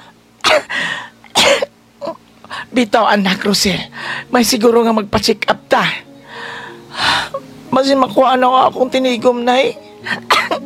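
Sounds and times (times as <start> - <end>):
person with a lingering cough coughing harshly: 0.4 - 2.2, 10.1 - 10.6
raspy wheezing breath: 0.7 - 1.2, 3.9 - 4.3, 6.2 - 7.4
speech: 2.7 - 6.1, 7.7 - 10.3.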